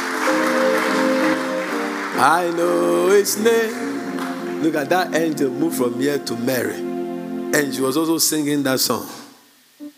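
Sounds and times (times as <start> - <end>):
audience clapping: 0.0 - 6.0
speech: 2.2 - 6.9, 7.5 - 9.3.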